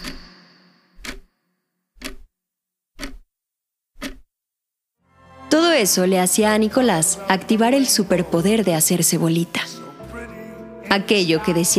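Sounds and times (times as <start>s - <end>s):
clock ticking in a grandfather's house: 0.0s - 1.3s, 2.0s - 2.3s, 2.9s - 3.3s, 4.0s - 4.3s
speech: 5.8s - 9.8s, 10.9s - 11.7s.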